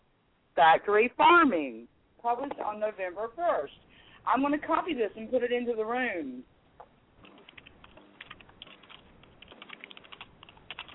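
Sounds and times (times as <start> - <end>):
speech: 0.6 - 6.5
typing on a computer keyboard: 7.2 - 10.9.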